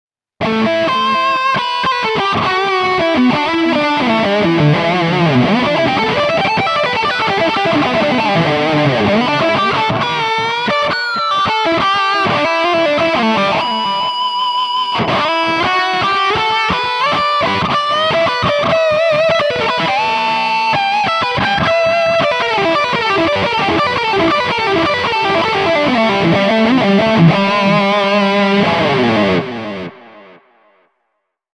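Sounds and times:
electric guitar through multi-effects processor: 0.4s - 31.0s.

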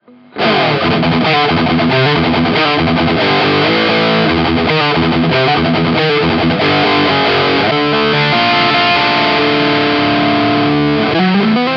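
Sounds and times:
guitar through Kammer Tiny K high gain boost: 0.0s - 11.7s.

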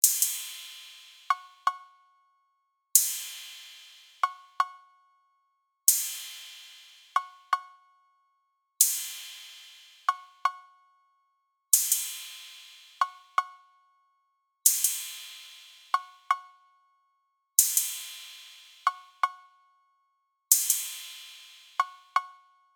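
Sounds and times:
ride percussion in a trap beat: 0.0s - 1.8s, 3.0s - 4.7s, 5.9s - 7.7s, 8.8s - 10.6s, 11.8s - 13.5s, 14.7s - 16.5s, 17.6s - 19.4s, 20.5s - 22.3s.

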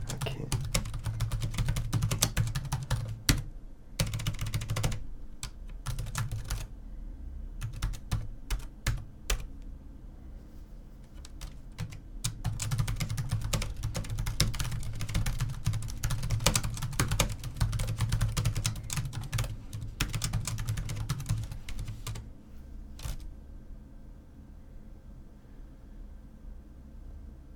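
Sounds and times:
keyboard typing: 0.0s - 6.7s, 7.6s - 9.5s, 11.0s - 22.2s, 23.0s - 23.3s.

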